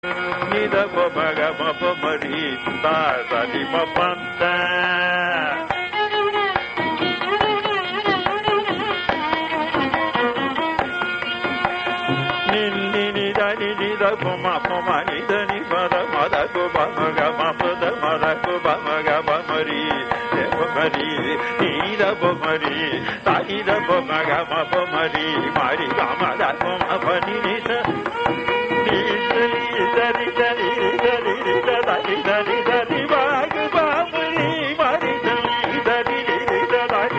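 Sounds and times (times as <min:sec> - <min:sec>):
swarakalpana improvisation in a Surutti varnam: 0:00.1 - 0:37.1.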